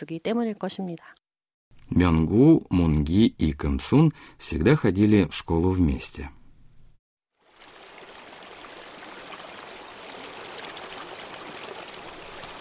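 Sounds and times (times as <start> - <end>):
speech: 0.0 - 1.2, 1.9 - 6.4
babbling stream: 7.4 - 12.5.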